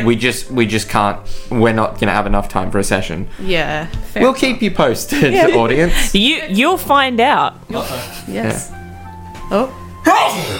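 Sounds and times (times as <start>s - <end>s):
speech: 0.0s - 8.8s, 9.5s - 10.5s
loud sneeze into microphone: 10.1s - 10.5s.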